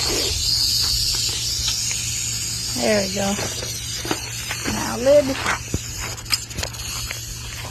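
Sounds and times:
pregnant female rattlesnake striking with a dry buzzing hiss: 0:00.0 - 0:07.6
speech: 0:02.8 - 0:04.2, 0:05.0 - 0:05.7.

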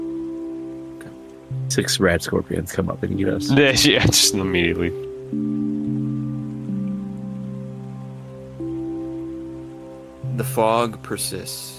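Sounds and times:
steady rain: 0:00.0 - 0:11.7
speech: 0:01.7 - 0:05.7, 0:10.4 - 0:11.7.

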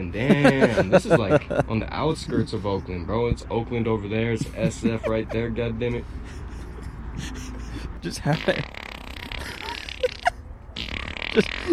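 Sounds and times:
speech: 0:00.0 - 0:06.4, 0:08.0 - 0:08.7, 0:11.4 - 0:11.7
outdoor hiss on the outskirts of Oakland: 0:00.0 - 0:11.7
laughter: 0:00.1 - 0:03.4, 0:04.2 - 0:08.7, 0:09.4 - 0:10.4
man blowing fart noises with his mouth at a wolf: 0:07.3 - 0:11.7.

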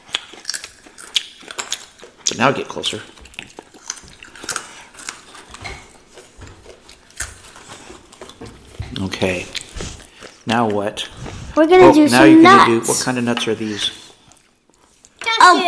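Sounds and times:
crunchy chewing of crackers into a microphone: 0:00.0 - 0:11.5
speech: 0:02.4 - 0:03.2, 0:09.2 - 0:09.6, 0:10.5 - 0:14.0.

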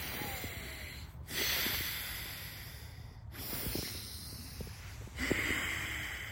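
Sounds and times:
forceful breathing through the nose in a breathwork exercise: 0:00.0 - 0:06.2.

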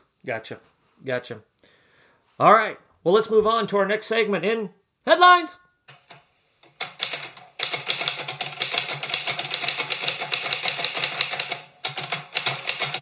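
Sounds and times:
speech: 0:00.2 - 0:01.5, 0:02.4 - 0:05.6
1935 Royal portable typewriter typing: 0:06.0 - 0:12.9.

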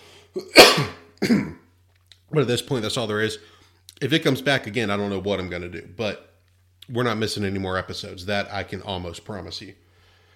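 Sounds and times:
harsh breathy cough: 0:00.4 - 0:01.6
speech: 0:00.4 - 0:01.6, 0:02.3 - 0:06.3, 0:06.9 - 0:09.8.

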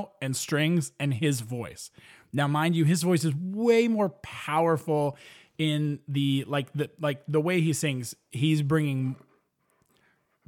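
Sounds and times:
speech: 0:00.0 - 0:09.3
dog panting: 0:09.0 - 0:10.4.

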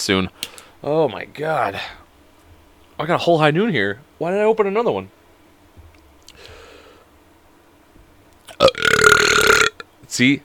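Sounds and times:
speech: 0:00.0 - 0:02.0, 0:03.0 - 0:05.2, 0:10.1 - 0:10.4
burp with gulping onset: 0:08.5 - 0:09.8.

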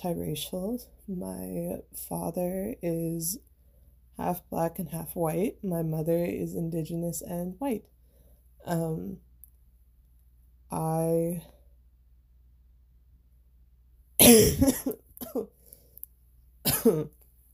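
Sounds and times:
speech: 0:00.0 - 0:03.5, 0:04.2 - 0:08.0, 0:08.6 - 0:09.2, 0:10.7 - 0:11.6, 0:14.3 - 0:15.6, 0:16.8 - 0:17.2
person coughing: 0:14.2 - 0:15.5, 0:16.6 - 0:17.2.

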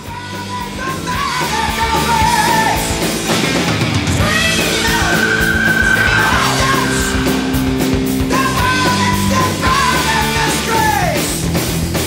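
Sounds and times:
distorted guitars in a 1982 heavy metal song: 0:00.1 - 0:12.0
pounding drums in a 1982 heavy metal song: 0:03.0 - 0:10.8
high screaming vocals wailing in a 1982 heavy metal song: 0:04.3 - 0:10.6.

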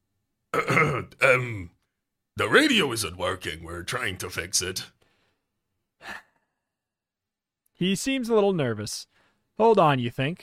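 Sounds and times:
ship's captain clearing his throat: 0:00.5 - 0:01.6
speech: 0:00.8 - 0:01.8, 0:02.4 - 0:05.0, 0:07.8 - 0:10.4.

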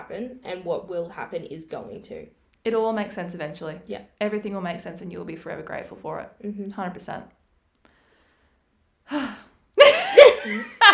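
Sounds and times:
speech: 0:00.0 - 0:07.4, 0:09.1 - 0:09.4
person drawing a deep breath with voiced gasps: 0:07.8 - 0:09.6.

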